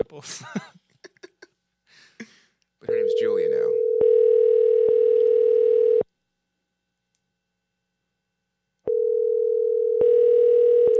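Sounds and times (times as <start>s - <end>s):
speech: 0.2s - 0.7s
ringing tone on a phone call: 2.9s - 6.0s, 8.9s - 10.9s.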